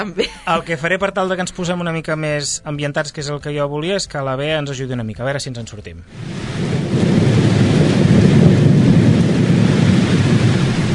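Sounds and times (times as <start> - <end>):
laughter: 0.0 - 0.8
speech: 0.0 - 7.1
deep rolling thunder: 6.1 - 10.9
steady dense rain: 6.1 - 10.9.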